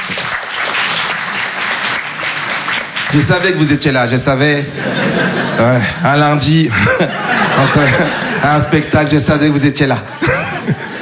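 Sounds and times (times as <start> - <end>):
audience applauding at a live comedy show: 0.0 - 4.0
speech: 3.1 - 10.2
laughter: 4.4 - 11.0.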